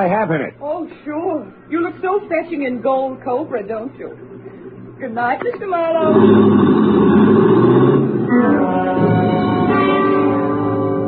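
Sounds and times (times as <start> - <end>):
speech: 0.0 - 4.4, 5.0 - 6.8
car engine gunned, accelerating away: 5.9 - 11.0.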